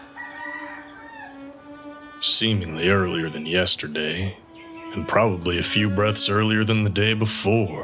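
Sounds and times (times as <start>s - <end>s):
rooster crowing in a long strained call: 0.0s - 2.2s
speech: 2.2s - 7.8s.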